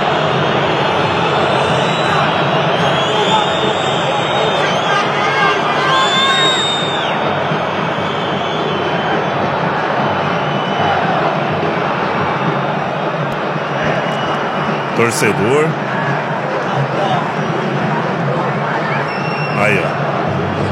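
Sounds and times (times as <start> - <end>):
football fans cheering and shouting in stadium after final whistle: 0.0 - 20.6
football fans whistling: 0.3 - 11.3, 13.8 - 15.7, 18.8 - 19.9
speech: 15.0 - 15.8.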